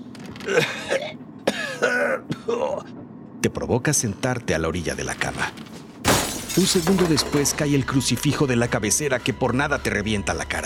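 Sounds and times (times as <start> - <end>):
speech: 0.4 - 0.8, 3.4 - 5.7, 6.6 - 10.6
man coughing: 0.5 - 2.9.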